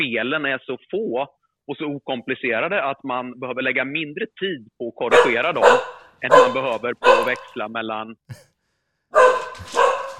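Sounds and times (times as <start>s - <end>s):
speech: 0.0s - 8.5s, 9.1s - 9.8s
dog barking: 5.1s - 7.6s, 9.1s - 10.1s.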